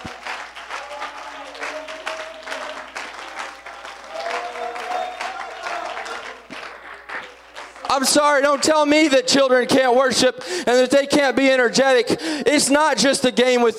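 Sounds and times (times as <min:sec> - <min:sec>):
audience clapping hands: 0:00.0 - 0:09.6
speech: 0:08.0 - 0:13.7.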